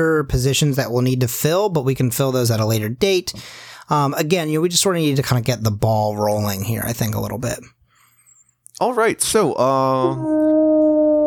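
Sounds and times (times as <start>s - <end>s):
speech: 0.0s - 7.8s, 8.8s - 10.4s
creature howling: 10.0s - 11.2s.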